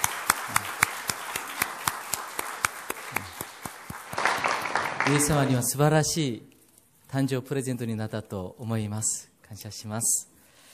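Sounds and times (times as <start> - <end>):
roomful of people applauding: 0.0 - 5.7
speech: 5.1 - 6.5, 7.1 - 10.3.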